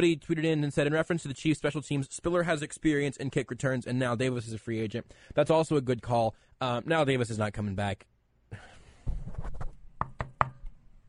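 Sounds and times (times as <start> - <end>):
speech: 0.0 - 8.7
hollow knocking on a wooden surface: 10.0 - 10.7.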